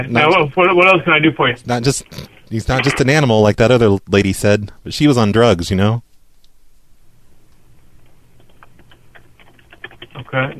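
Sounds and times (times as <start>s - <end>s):
speech: 0.0s - 6.0s, 10.2s - 10.5s
low hum: 0.0s - 10.5s
typing on a computer keyboard: 8.4s - 10.3s.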